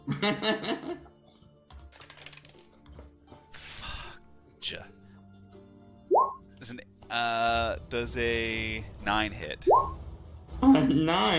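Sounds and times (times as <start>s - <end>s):
speech: 0.2s - 1.0s, 4.7s - 5.0s, 6.6s - 10.0s, 10.6s - 11.3s
dice rolled for combat clattering across a hard tabletop: 1.9s - 2.8s.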